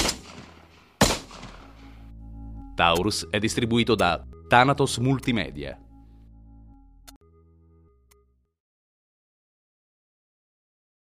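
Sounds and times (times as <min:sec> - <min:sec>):
Taurus Ferox 765 rifle gunshot: 0:00.0 - 0:02.0
speech: 0:02.8 - 0:05.9.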